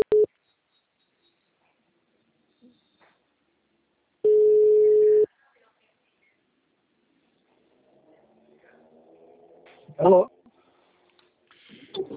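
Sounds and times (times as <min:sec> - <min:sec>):
ringback tone on an outgoing telephone call: 0:04.2 - 0:05.3
speech: 0:10.0 - 0:10.3.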